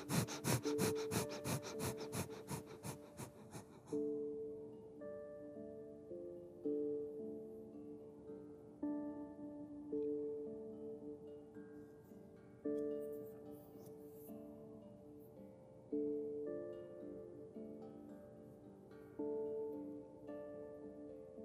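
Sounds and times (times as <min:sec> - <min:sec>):
rapid forceful nasal breath-of-fire breathing: 0:00.0 - 0:04.0
soft sustained music: 0:00.0 - 0:21.4.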